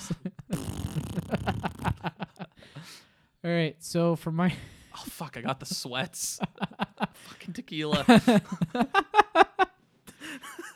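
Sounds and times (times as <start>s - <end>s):
person farting: 0.5s - 2.1s
laughter: 1.3s - 2.6s, 6.3s - 7.3s, 8.0s - 10.7s
speech: 3.4s - 9.5s.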